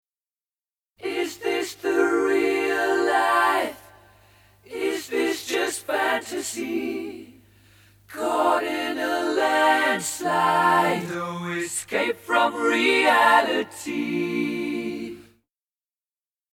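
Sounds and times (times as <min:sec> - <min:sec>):
unaccompanied voices singing in harmony: 0:01.0 - 0:15.4.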